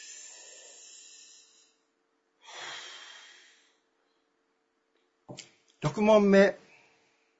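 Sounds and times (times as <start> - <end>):
deep breathing during a relaxation pause in a test: 0.0 - 3.9
speech: 5.3 - 6.6.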